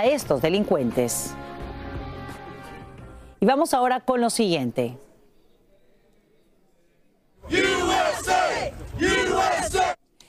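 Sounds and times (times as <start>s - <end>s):
speech: 0.0s - 1.6s, 3.4s - 5.0s
crowd of activists protesting migration policies chanting a slogan in Texas: 7.4s - 10.0s.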